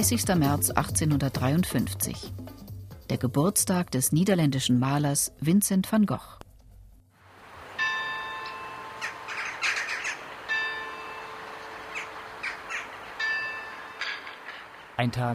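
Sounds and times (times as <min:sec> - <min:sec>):
speech: 0:00.0 - 0:02.5, 0:03.1 - 0:06.4, 0:15.0 - 0:15.3
steady droning tone: 0:07.3 - 0:15.3
crows cawing above a Protestant church cemetery in Zündert: 0:07.8 - 0:15.0.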